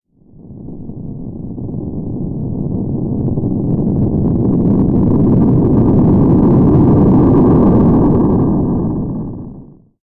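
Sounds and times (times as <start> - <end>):
ground rumbling: 0.4 - 9.8.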